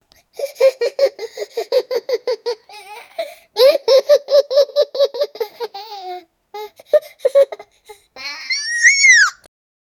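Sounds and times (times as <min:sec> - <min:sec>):
child laughing happily: 0:00.4 - 0:09.5.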